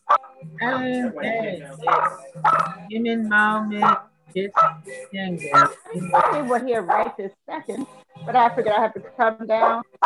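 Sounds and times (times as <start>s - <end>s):
speech: 0.5s - 10.0s
dogs barking and yipping: 1.8s - 2.8s, 3.7s - 4.9s, 5.5s - 7.2s, 9.5s - 10.0s.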